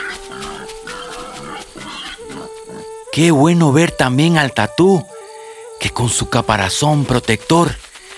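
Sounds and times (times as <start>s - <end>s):
white-lipped peccaries grunting in a forest: 0.0s - 2.9s
speech: 3.2s - 5.1s, 5.8s - 7.8s.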